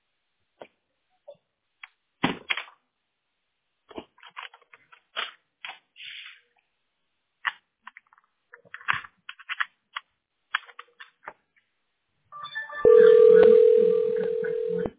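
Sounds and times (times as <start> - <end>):
telephone keypad beeps from dialing to transfer a call: 12.4 - 14.9
telephone ringing tone: 12.4 - 14.9.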